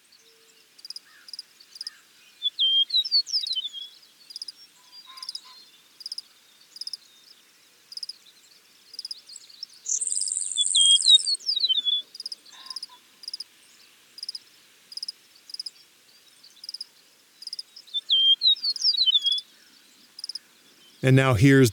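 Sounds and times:
eastern meadowlark singing: 9.9 - 12.0, 17.9 - 19.4
speech: 21.0 - 21.7.

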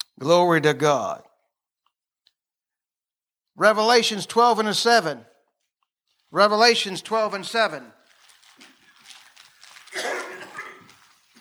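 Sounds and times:
speech: 0.2 - 1.3, 3.6 - 5.3, 6.3 - 8.0
person sneezing: 9.9 - 11.0.

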